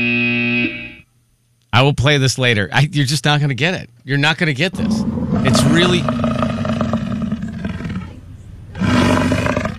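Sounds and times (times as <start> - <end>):
speech: 1.7 - 6.4
lion roaring: 4.7 - 9.7.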